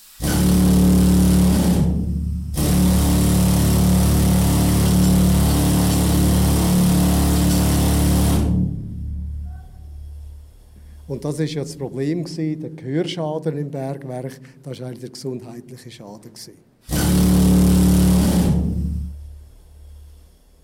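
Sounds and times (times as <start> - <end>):
pneumatic pick hammer running in a mine: 0.2 - 8.8, 16.9 - 20.0
speech: 11.2 - 17.3.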